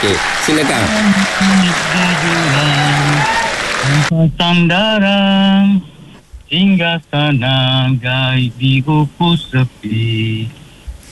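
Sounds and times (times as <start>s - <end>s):
audience applause: 0.0s - 4.1s
speech: 0.0s - 10.6s
sustained pitched voice: 0.8s - 3.2s.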